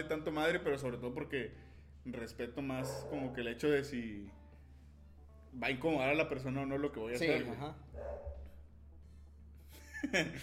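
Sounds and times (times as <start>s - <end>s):
speech: 0.0s - 4.4s, 5.5s - 8.4s, 10.0s - 10.4s
dog barking at home: 2.8s - 3.5s, 7.9s - 8.6s
laughter: 9.7s - 10.4s.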